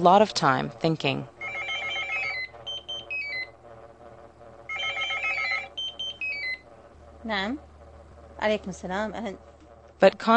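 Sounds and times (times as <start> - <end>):
speech: 0.0 - 1.3, 7.2 - 7.7, 8.4 - 10.3
faint hum: 0.0 - 10.3
telephone ringing with bright warbling electronic tones: 1.4 - 3.5, 4.7 - 6.6.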